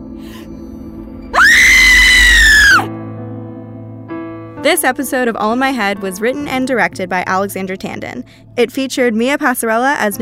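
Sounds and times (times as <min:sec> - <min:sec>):
person screaming: 0:01.4 - 0:02.9
speech: 0:04.6 - 0:10.1.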